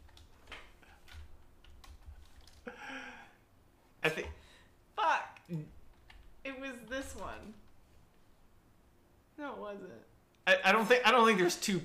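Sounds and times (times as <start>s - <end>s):
typing on a computer keyboard: 0.0s - 2.7s, 5.5s - 6.3s
speech: 4.1s - 4.4s, 5.5s - 5.8s, 9.6s - 11.8s.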